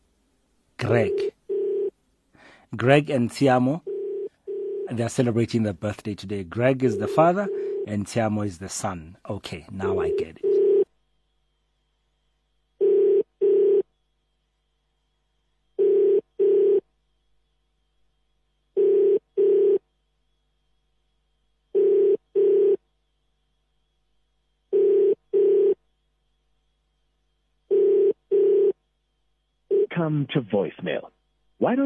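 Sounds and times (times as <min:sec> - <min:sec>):
speech: 0:00.8 - 0:01.3, 0:02.7 - 0:03.9, 0:04.9 - 0:10.5, 0:30.1 - 0:31.8
telephone ringback tone on an outgoing call: 0:00.9 - 0:02.0, 0:03.8 - 0:04.9, 0:06.9 - 0:07.9, 0:09.8 - 0:10.9, 0:12.8 - 0:13.9, 0:15.8 - 0:16.9, 0:18.8 - 0:19.8, 0:21.7 - 0:22.8, 0:24.7 - 0:25.8, 0:27.7 - 0:28.8, 0:29.7 - 0:29.9.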